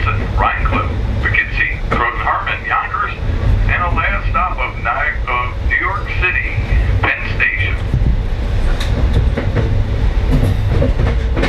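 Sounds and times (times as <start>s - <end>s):
passenger train rolling along the rails: 0.0s - 11.4s
train wheels clacking over track joints: 7.8s - 11.4s.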